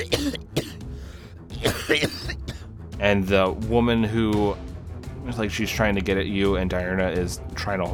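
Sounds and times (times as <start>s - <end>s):
person coughing violently: 0.0s - 0.9s, 1.6s - 2.7s
short gravelly breaths and throat noise: 0.8s - 1.5s
speech: 1.9s - 2.3s, 3.0s - 4.7s, 5.3s - 7.9s.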